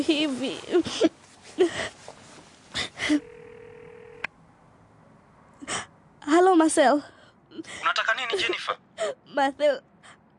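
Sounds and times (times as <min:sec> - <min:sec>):
speech: 0:00.0 - 0:02.0, 0:02.8 - 0:03.3, 0:06.3 - 0:09.9
telephone dialed to place a call: 0:03.2 - 0:04.2.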